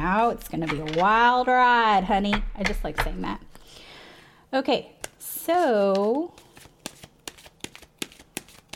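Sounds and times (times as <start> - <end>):
speech: 0.0 - 3.5, 4.5 - 6.4
deck of cards being shuffled: 5.0 - 8.7.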